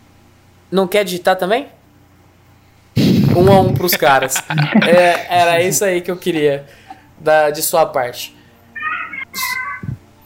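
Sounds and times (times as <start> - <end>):
speech: 0.7 - 1.8, 3.4 - 8.4, 9.3 - 9.6
laughter: 3.4 - 7.0
cat meowing: 8.8 - 10.0.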